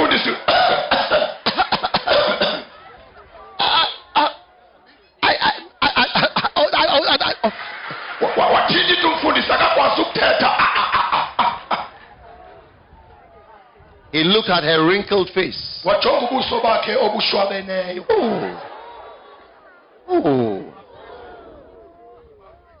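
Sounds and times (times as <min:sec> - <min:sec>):
person imitating coughing with hacking fits: 0:00.4 - 0:02.7, 0:05.2 - 0:07.4, 0:10.1 - 0:11.9
laughter: 0:02.4 - 0:12.7, 0:16.0 - 0:22.7
speech: 0:14.2 - 0:18.7, 0:20.2 - 0:20.4.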